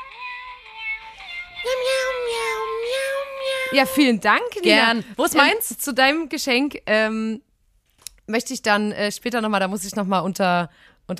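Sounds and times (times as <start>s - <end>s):
tinny synthesized cat meow tune from a musical greeting card speaker: 1.4s - 3.9s
speech: 3.7s - 7.5s, 8.3s - 11.1s.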